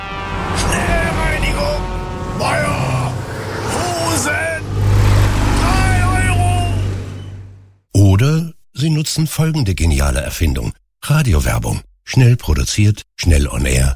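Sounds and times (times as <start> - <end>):
heavy trucks rumbling past: 0.0 - 7.8
truck drivers calling out over traffic: 0.1 - 7.6
speech: 8.9 - 13.9.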